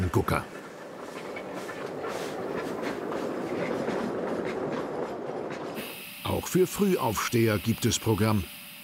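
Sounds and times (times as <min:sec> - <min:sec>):
Garrett steam locomotive running on track: 0:00.0 - 0:08.8
speech: 0:00.1 - 0:00.6, 0:06.3 - 0:08.6.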